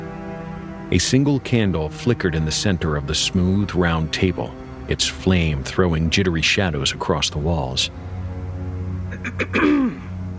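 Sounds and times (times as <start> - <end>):
speech: 0.9 - 8.1, 9.4 - 9.9
woman clearing her throat: 9.1 - 10.1.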